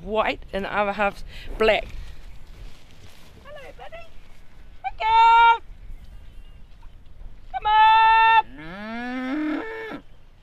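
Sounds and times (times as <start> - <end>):
speech: 0.0 - 2.0, 5.0 - 5.7, 7.6 - 9.7
dairy cow mooing: 8.4 - 10.0.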